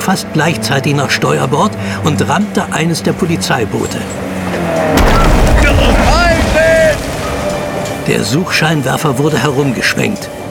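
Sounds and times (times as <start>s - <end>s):
speech: 0.1s - 6.0s, 8.1s - 10.4s
deep rumbling boom: 4.9s - 8.2s
gunshot: 5.0s - 7.4s.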